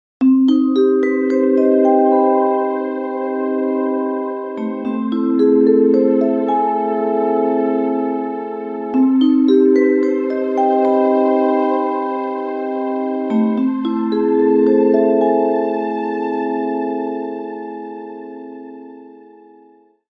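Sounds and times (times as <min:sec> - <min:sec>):
dreamy melody ringtone: 0:00.2 - 0:19.6.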